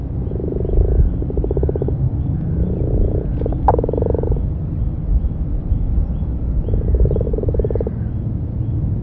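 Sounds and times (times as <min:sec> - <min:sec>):
common frog giving pulsed purring croaks: 0:00.0 - 0:04.6, 0:06.6 - 0:08.1
low rumbling background: 0:00.0 - 0:09.0.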